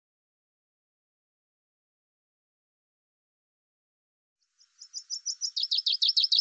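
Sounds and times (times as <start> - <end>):
common chaffinch song opening: 4.6 - 6.3.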